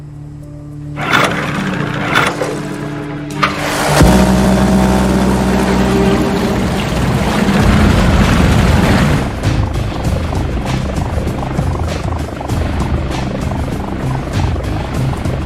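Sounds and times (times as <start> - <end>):
small four-stroke boat motor idling: 0.9 - 15.4
small four-stroke boat motor pull starter yanks: 1.0 - 9.3.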